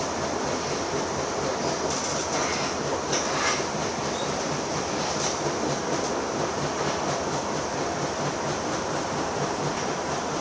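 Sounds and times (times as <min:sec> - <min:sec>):
underground train rumbling with wheels rattling on track: 0:00.0 - 0:10.3
underground train hisses and squeals: 0:01.6 - 0:05.3.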